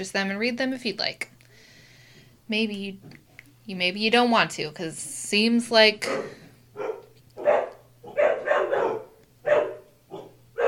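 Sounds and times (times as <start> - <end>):
speech: 0.0 - 1.4, 2.5 - 6.9
low steady hum: 0.0 - 10.6
several dogs barking at someone at the door of a house after dark: 6.0 - 10.6.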